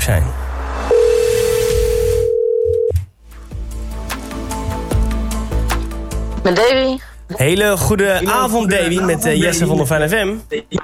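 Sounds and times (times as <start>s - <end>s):
speech: 0.0s - 0.4s, 6.4s - 10.8s
telephone ringing tone while placing a call: 0.9s - 3.0s
music playing: 3.2s - 10.1s.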